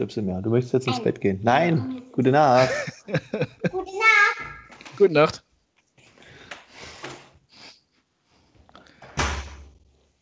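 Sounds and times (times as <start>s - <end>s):
speech: 0.0s - 4.3s, 5.0s - 5.4s
laughter: 0.9s - 3.9s
door closing with a solid booming thud: 9.0s - 9.8s.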